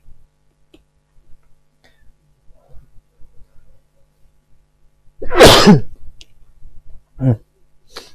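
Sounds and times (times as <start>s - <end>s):
quiet clicks: 0.6s - 2.0s
single loud sneeze: 5.2s - 5.9s
speech: 5.6s - 5.9s.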